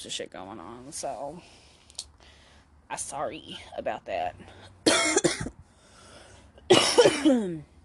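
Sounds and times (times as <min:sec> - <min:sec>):
speech: 0:00.0 - 0:01.7, 0:02.9 - 0:05.5, 0:06.7 - 0:07.7
person coughing: 0:04.9 - 0:05.5, 0:06.7 - 0:07.6.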